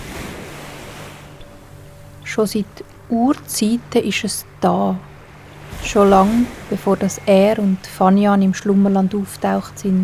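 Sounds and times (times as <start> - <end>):
ocean waves washing onto a sandy beach: 0.0 - 10.0
speech: 2.3 - 5.1, 5.8 - 10.0.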